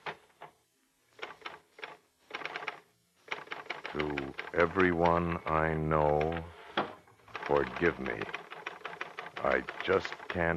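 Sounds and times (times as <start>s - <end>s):
portable typewriter typing with paper inserted: 1.2s - 6.4s, 7.3s - 10.5s
speech: 4.0s - 6.6s, 7.5s - 8.4s, 9.4s - 10.5s.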